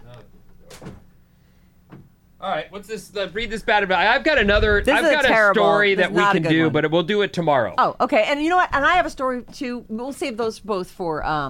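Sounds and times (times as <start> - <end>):
low steady room hum: 0.0 - 11.4
door opening with a clunk and rattle: 0.7 - 1.1
speech: 2.4 - 11.4.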